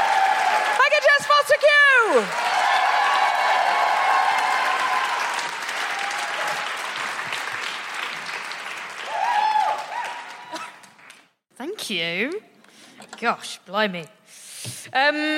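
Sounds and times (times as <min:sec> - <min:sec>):
cheers: 0:00.0 - 0:10.8
applause from a large audience: 0:00.0 - 0:11.3
speech: 0:02.1 - 0:02.4, 0:13.2 - 0:15.3.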